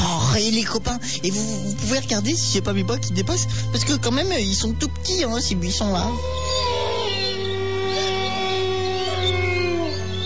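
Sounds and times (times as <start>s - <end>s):
sustained tone and low drone: 0.0s - 10.2s
speech: 0.4s - 6.8s
wolves howling in a cartoon hunting scene: 5.2s - 10.2s.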